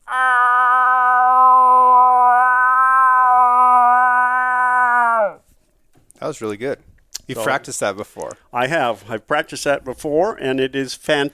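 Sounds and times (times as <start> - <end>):
person imitating a cow moose call with a nasal moan: 0.0 - 5.4
speech: 6.2 - 11.3.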